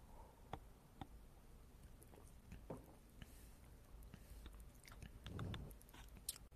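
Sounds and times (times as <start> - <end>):
wet mouth clicks and smacks: 1.8 - 6.5
person sipping coconut water: 4.1 - 6.5
fuller gulping swallow: 4.8 - 5.8.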